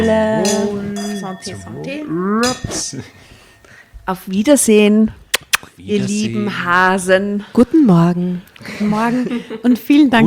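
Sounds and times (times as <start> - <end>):
speech: 0.0 - 3.4, 4.0 - 10.2
glasses clinking in a toast: 0.4 - 3.8.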